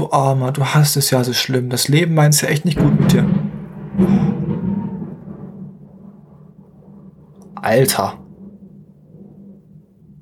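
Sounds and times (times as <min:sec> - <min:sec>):
speech: 0:00.0 - 0:03.4, 0:04.0 - 0:04.4, 0:07.6 - 0:08.2
thunder rumbling from a nearby lightning strike: 0:01.9 - 0:10.1.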